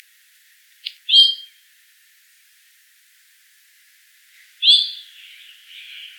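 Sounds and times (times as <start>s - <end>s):
Icterus cucullatus: 0.8s - 1.6s, 4.6s - 6.1s.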